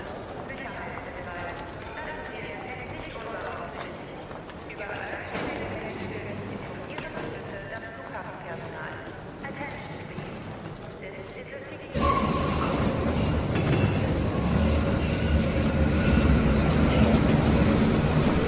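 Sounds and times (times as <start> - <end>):
metro train rumbling along rails: 11.9 - 18.4
brief high squeal: 15.8 - 18.4.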